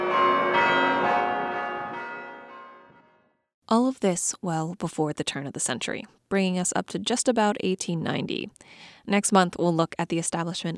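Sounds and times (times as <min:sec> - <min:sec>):
university chime bells ringing: 0:00.0 - 0:02.8
speech: 0:03.7 - 0:10.7.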